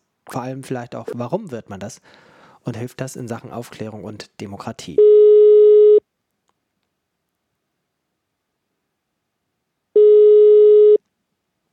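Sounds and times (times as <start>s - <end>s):
speech: 0.3s - 5.2s
telephone ringback tones on an outgoing call: 5.0s - 6.0s, 10.0s - 11.0s.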